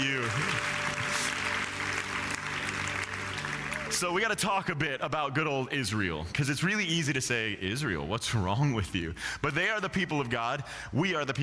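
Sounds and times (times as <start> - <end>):
audience clapping: 0.0 - 4.7
speech: 4.0 - 11.4.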